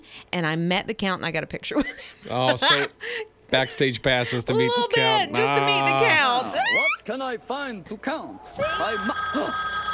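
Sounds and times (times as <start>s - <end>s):
speech: 0.1s - 9.8s
telephone ringing with a bright electronic tone: 8.5s - 9.9s.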